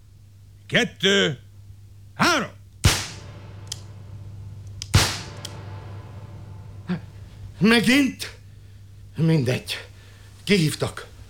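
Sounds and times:
speech: 0.7s - 1.4s, 7.6s - 8.4s, 9.2s - 9.9s, 10.5s - 11.1s
steady low hum: 1.5s - 11.2s
pistol shot fired in a duel: 2.8s - 7.8s.

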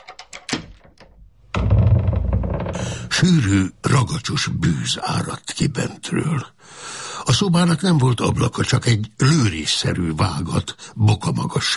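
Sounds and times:
lock rattling with metallic clicks: 0.0s - 3.1s
heavy iron-bound oak door creaking open: 0.0s - 3.3s
speech: 3.2s - 11.7s.

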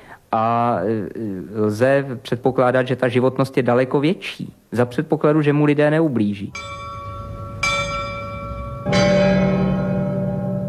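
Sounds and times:
speech: 0.3s - 6.8s
large swinging church bell ringing: 6.5s - 10.6s.

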